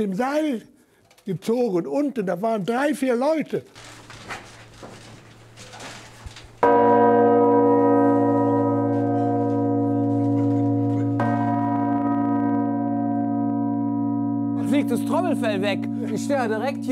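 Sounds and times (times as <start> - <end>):
speech: 0.0 - 4.0, 14.9 - 16.9
massive five-ton church bell ringing: 6.6 - 16.9.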